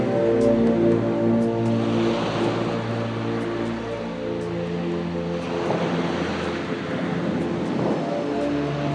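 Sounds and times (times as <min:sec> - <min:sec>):
ocean waves washing onto a sandy beach: 0:00.0 - 0:08.9.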